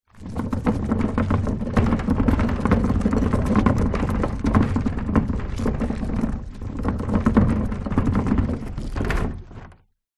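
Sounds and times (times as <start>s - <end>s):
plastic wheelie bin pulled over stony ground: 0.1s - 9.9s.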